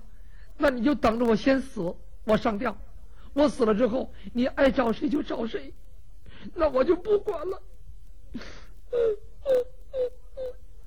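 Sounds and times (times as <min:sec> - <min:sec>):
speech: 0:00.7 - 0:05.8, 0:06.4 - 0:07.7, 0:08.3 - 0:10.6
woman crying with whimpering sobs in a spoken story performance: 0:08.3 - 0:10.6.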